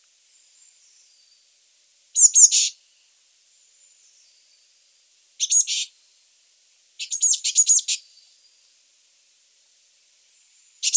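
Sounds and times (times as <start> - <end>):
Eurasian blue tit Cyanistes caeruleus churring calls: 2.2 - 2.7, 5.4 - 5.9, 7.0 - 8.0.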